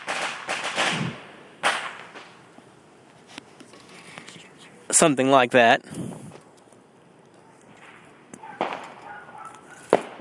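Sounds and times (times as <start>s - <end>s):
fireworks going off at night: 0.0s - 2.6s, 7.7s - 10.1s
low hiss: 0.2s - 9.0s
speech: 4.9s - 6.1s.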